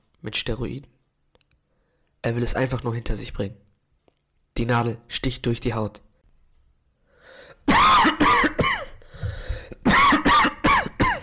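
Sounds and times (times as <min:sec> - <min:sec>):
speech: 0:00.2 - 0:01.0, 0:02.2 - 0:03.7, 0:04.6 - 0:06.1
persistent harsh coughing fit: 0:07.6 - 0:11.2.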